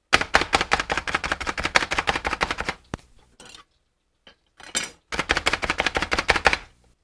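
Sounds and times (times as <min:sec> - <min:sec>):
food chopper chopping onions into chunks: 0:00.2 - 0:02.9, 0:05.2 - 0:06.7.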